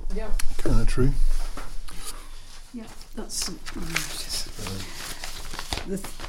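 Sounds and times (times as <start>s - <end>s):
speech: 0.2s - 1.4s, 2.8s - 5.0s, 5.9s - 6.2s
papers rustling and crinkling: 1.3s - 6.2s.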